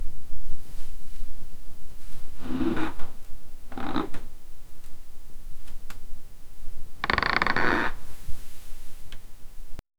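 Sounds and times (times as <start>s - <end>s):
subtle creak of wood: 3.7s - 4.3s, 7.0s - 8.1s.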